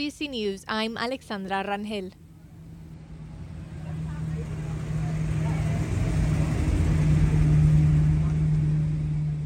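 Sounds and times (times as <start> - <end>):
speech: 0.0 - 2.2
classic car engines idling and revving outside a hospital in Yuma County: 2.2 - 9.4.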